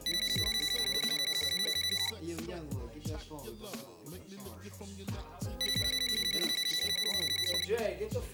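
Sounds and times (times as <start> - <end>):
telephone ringing with an electronic trill: 0.0 - 2.2, 5.6 - 7.8
speech: 3.2 - 8.3.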